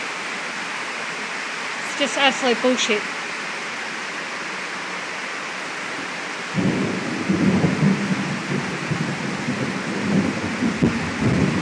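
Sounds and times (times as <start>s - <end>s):
heavy rain: 0.0s - 11.6s
speech: 2.0s - 3.2s
thunder rolling in a long deep rumble: 6.5s - 11.6s.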